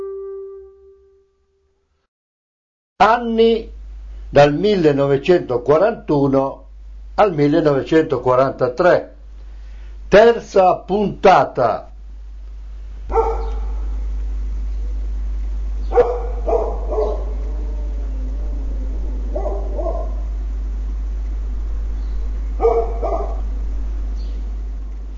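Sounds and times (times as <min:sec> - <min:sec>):
speech: 0:03.0 - 0:06.6, 0:07.2 - 0:09.1, 0:10.1 - 0:11.9, 0:13.1 - 0:13.3
steady low hum: 0:03.2 - 0:11.2, 0:11.8 - 0:25.1
dog barking: 0:13.1 - 0:14.0, 0:15.9 - 0:17.6, 0:19.3 - 0:20.3, 0:22.6 - 0:23.5.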